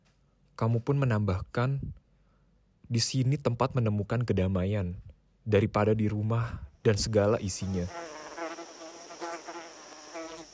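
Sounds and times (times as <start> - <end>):
speech: 0.6 - 2.0, 2.9 - 8.2
mosquitoes buzzing around a small hut: 7.5 - 10.5.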